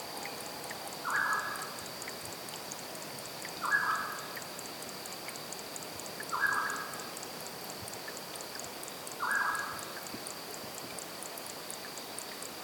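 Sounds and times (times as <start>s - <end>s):
forest stream flowing: 0.0s - 12.6s
thin constant insect whine: 0.0s - 12.6s
short mid-pitched bird call: 1.0s - 1.7s, 3.6s - 4.2s, 6.3s - 6.9s, 9.2s - 9.8s.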